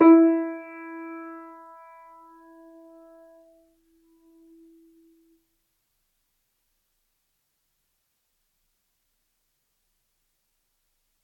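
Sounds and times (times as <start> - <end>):
grand piano E3 note sustaining: 0.0 - 3.5.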